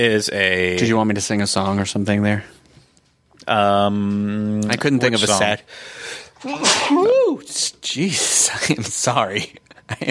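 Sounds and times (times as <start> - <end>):
speech: 0.0 - 2.6, 3.4 - 10.0
person sneezing: 6.4 - 7.1.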